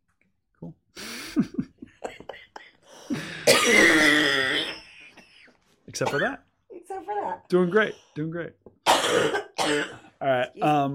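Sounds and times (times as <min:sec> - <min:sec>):
speech: 0:01.4 - 0:01.6, 0:06.0 - 0:06.5, 0:07.2 - 0:10.9
unwell woman clearing throat: 0:03.4 - 0:04.8, 0:08.9 - 0:10.1
unwell woman coughing: 0:03.4 - 0:04.9, 0:06.0 - 0:06.4, 0:08.9 - 0:10.1.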